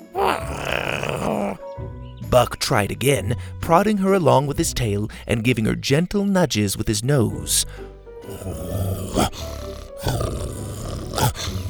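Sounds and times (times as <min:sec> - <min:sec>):
dinosaur growling back at another: 0:00.0 - 0:01.7, 0:08.2 - 0:11.6
speech: 0:02.3 - 0:10.4.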